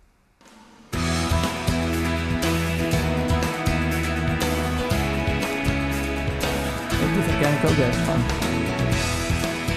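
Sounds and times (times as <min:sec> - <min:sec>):
steady drums: 0:00.0 - 0:09.7
full band playing energetic worship-style song: 0:02.9 - 0:09.7
speech: 0:07.6 - 0:08.4.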